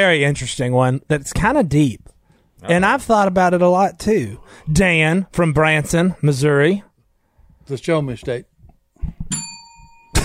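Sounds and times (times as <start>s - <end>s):
speech: 0.0s - 6.9s, 7.7s - 9.5s
bright bell ringing: 9.3s - 10.2s.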